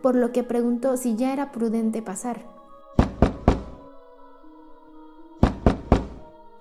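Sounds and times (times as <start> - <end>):
speech: 0.0 - 2.6
man knocking on a wooden bedroom door: 3.0 - 3.8, 5.4 - 6.2.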